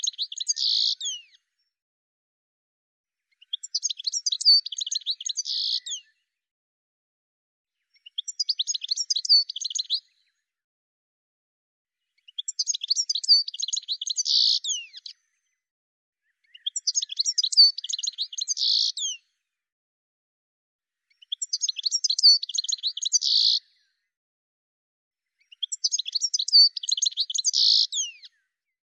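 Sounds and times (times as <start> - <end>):
bird song of rapid high chirps and twittering with a buzzy trill: 0.0 - 1.4, 3.3 - 6.2, 7.9 - 10.4, 12.2 - 15.6, 16.3 - 19.3, 21.1 - 23.9, 25.4 - 28.5.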